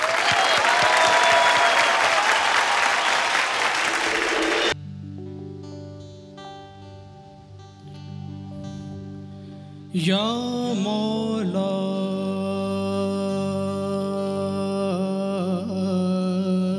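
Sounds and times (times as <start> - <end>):
audience applause welcoming a performer on stage: 0.0 - 4.8
quiet instrumental music with sustained tones: 4.8 - 16.7
speech: 10.0 - 12.0.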